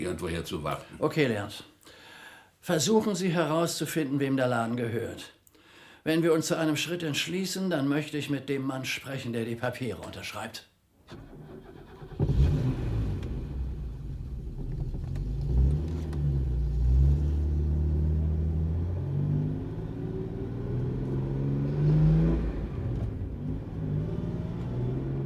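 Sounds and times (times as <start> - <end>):
speech: 0.0 - 1.7, 2.6 - 5.4, 6.0 - 11.4
car engine rumbling and revving while driving: 11.5 - 25.2.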